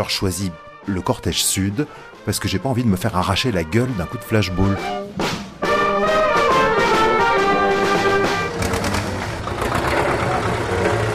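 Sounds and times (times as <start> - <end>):
speech: 0.0 - 5.4
convoy of farmers' tractors rumbling past along the mall: 5.6 - 11.1.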